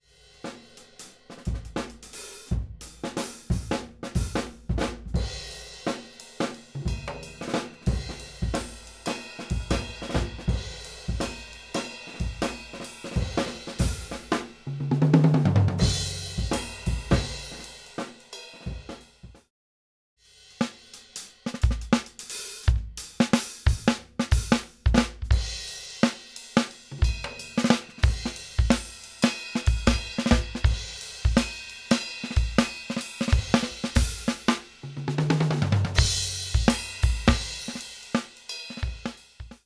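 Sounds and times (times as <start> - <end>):
entire drum set playing, raw and processed with EQ: 0.3 - 19.4, 20.5 - 39.6.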